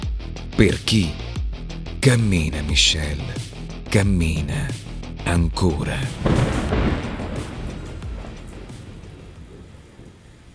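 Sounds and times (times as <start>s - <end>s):
speech: 0.6s - 1.2s, 2.0s - 7.1s
deep rumble of thunder: 5.8s - 10.5s
steady dense downpour of rain in a city: 6.1s - 10.5s.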